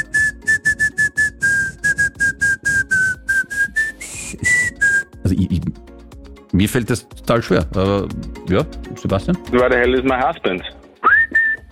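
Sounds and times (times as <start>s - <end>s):
person whistling a catchy pop tune: 0.0s - 5.2s, 11.0s - 11.7s
speech: 5.3s - 5.9s, 6.5s - 10.8s.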